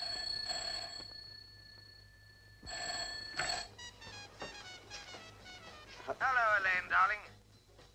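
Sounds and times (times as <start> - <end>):
old telephone bell ringing: 0.0 - 4.4
speech: 6.6 - 7.3.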